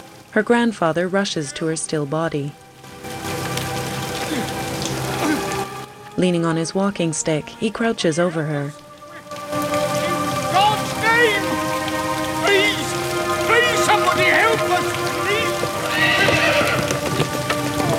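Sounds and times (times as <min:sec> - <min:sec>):
rainfall hissing: 0:00.0 - 0:17.9
speech: 0:00.4 - 0:02.6, 0:06.2 - 0:08.8
horse hooves clip-clopping drawing a hansom cab in the rain: 0:09.4 - 0:17.9
horse whinnying: 0:15.8 - 0:17.1.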